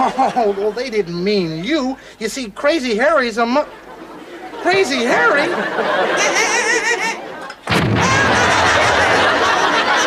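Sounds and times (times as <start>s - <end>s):
excited people laughing: 0.0s - 1.9s, 3.4s - 10.0s
speech: 0.1s - 3.8s, 4.6s - 6.6s
loud explosion with rumbling roar of debris: 7.7s - 9.5s.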